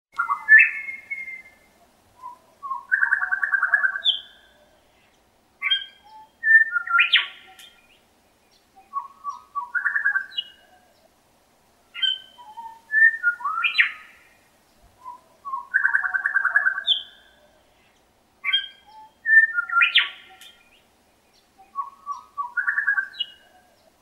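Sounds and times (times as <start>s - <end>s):
grey shrike calling: 0.2s - 4.8s, 5.6s - 7.9s, 12.0s - 14.4s, 15.0s - 17.6s, 18.4s - 20.8s, 21.6s - 23.8s.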